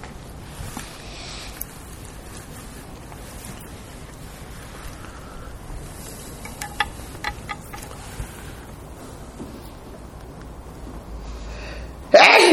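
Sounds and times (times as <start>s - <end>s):
faint hum: 0.0s - 12.5s
loud breathy sneeze: 12.1s - 12.5s.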